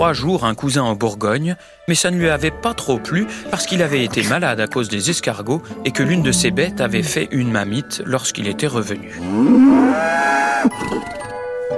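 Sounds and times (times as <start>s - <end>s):
speech: 0.0s - 11.2s
cow mooing: 9.1s - 10.7s.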